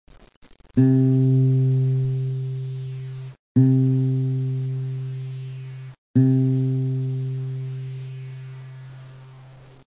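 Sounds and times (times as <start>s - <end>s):
acoustic guitar note C: 0.8s - 8.4s.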